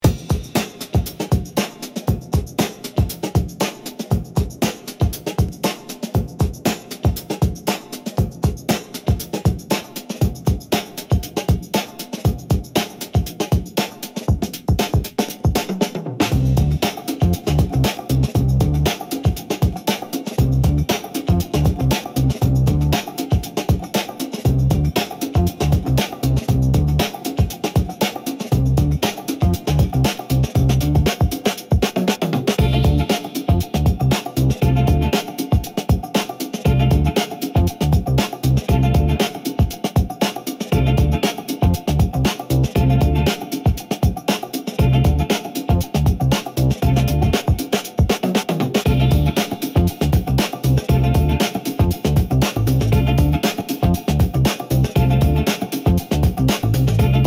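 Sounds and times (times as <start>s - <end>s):
urban beat: 0.0s - 57.2s.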